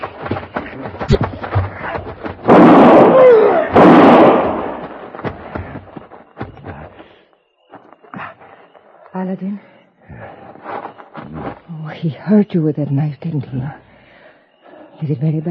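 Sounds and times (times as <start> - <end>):
knocks: 0.0 - 7.0
rifle shots: 2.5 - 4.9
speech: 9.2 - 9.7, 12.0 - 13.8, 15.0 - 15.5.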